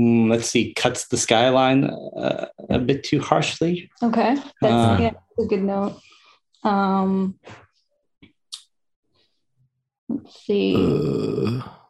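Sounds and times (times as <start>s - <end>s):
speech: 0.0s - 7.6s, 10.1s - 11.8s
low guttural burp: 10.7s - 11.8s.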